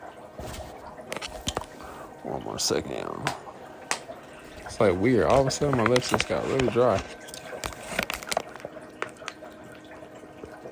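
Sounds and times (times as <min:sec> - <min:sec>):
person sipping water with wet slurping and gulps: 0:00.7 - 0:02.4, 0:05.3 - 0:09.4
speech: 0:02.2 - 0:03.5, 0:04.8 - 0:07.2.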